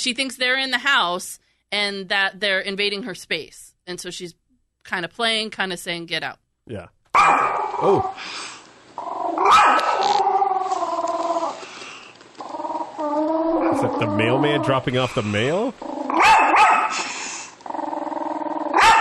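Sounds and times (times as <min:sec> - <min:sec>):
speech: 0:00.0 - 0:09.8, 0:13.8 - 0:15.9
scared dog barking: 0:07.2 - 0:07.8, 0:09.4 - 0:10.0, 0:16.1 - 0:17.0, 0:18.8 - 0:18.9
scared dog growling: 0:09.0 - 0:11.6, 0:12.4 - 0:14.9, 0:15.7 - 0:18.9.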